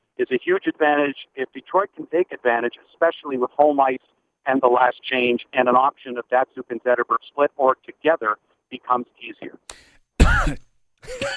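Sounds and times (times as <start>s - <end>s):
speech: 0.2s - 11.3s
person coughing into the microphone: 10.2s - 11.3s.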